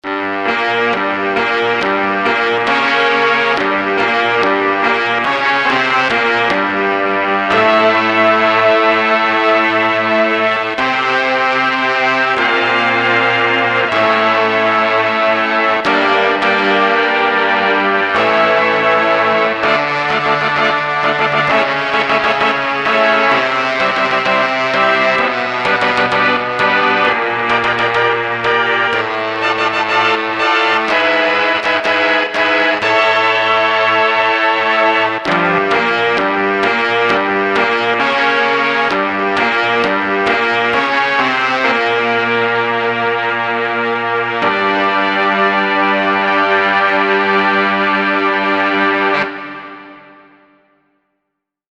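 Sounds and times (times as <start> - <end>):
vintage brass sound from Manikin Electronic Memotron: 0.0 - 50.9.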